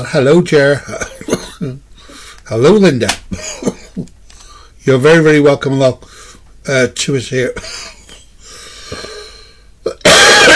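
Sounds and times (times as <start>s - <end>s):
speech: 0.0s - 1.8s, 2.5s - 3.7s, 4.8s - 7.9s, 8.9s - 9.1s
person coughing harshly: 1.0s - 1.8s, 3.4s - 4.1s, 7.6s - 8.2s, 9.9s - 10.5s.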